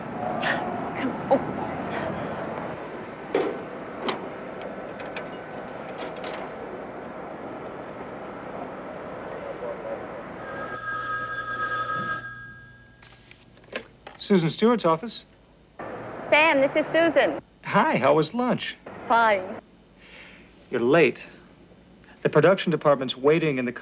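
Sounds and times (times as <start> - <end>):
low room noise: 0.0 - 23.7
electronic telephone ringing during a phone call: 10.4 - 13.3
speech: 14.3 - 15.3, 16.5 - 19.6, 20.7 - 21.4, 22.2 - 23.7.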